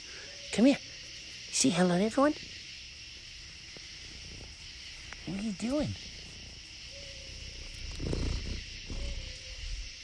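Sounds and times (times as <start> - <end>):
night insects droning: 0.0 - 10.0
speech: 0.6 - 0.9, 1.6 - 2.6, 5.5 - 6.1
owl hooting in the woods at night: 5.9 - 10.0.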